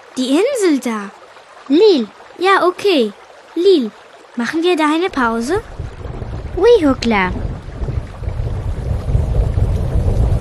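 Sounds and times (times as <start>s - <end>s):
rain starting to fall in a steady dense hiss: 0.0s - 10.4s
speech: 0.2s - 5.7s, 6.6s - 7.4s
deep rumbling wash: 4.9s - 10.4s.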